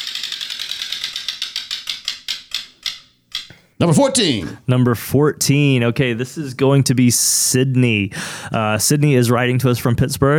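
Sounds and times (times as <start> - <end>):
prize wheel being spun with ratcheting clicks: 0.0 - 3.5
speech: 3.8 - 10.3.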